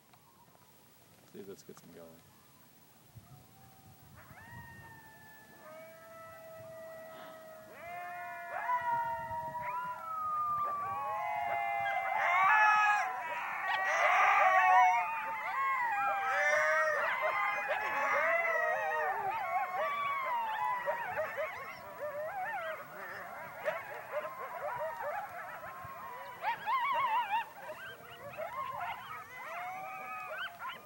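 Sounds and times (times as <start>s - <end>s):
speech: 1.4s - 2.4s
chorus of coyotes in outdoor research pens howling and yipping: 2.2s - 30.8s
researcher howling: 5.8s - 24.3s.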